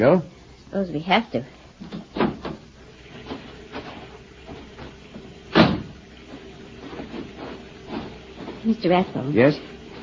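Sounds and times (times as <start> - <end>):
speech: 0.0 - 2.0, 8.7 - 10.0
door opening: 1.8 - 8.6
wooden clunks and rattles of a door: 1.8 - 8.8.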